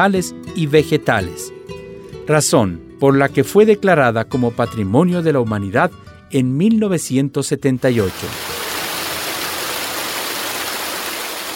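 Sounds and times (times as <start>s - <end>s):
speech: 0.0s - 1.7s, 2.3s - 8.5s
waterfall rushing on the route of waterfalls between Baños de Agua Santa and Puyo: 7.9s - 11.5s.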